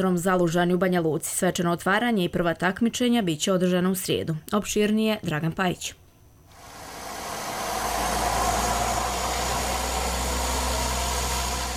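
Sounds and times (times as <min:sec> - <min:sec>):
speech: 0:00.0 - 0:06.0
aircraft engine drone over an airfield: 0:06.5 - 0:11.7.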